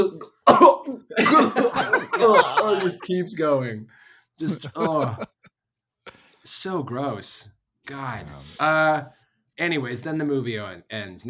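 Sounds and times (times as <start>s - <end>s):
voice imitating someone coughing while gulping down a drink: 0.4s - 3.0s
laughter: 1.1s - 3.6s, 4.4s - 5.5s
speech: 1.3s - 5.4s, 6.4s - 11.2s.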